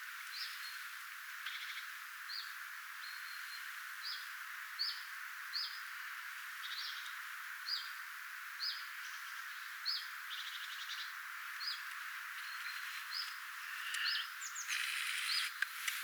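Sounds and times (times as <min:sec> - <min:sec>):
background hiss: 0:00.0 - 0:16.0
common chiffchaff calls: 0:12.3 - 0:16.0.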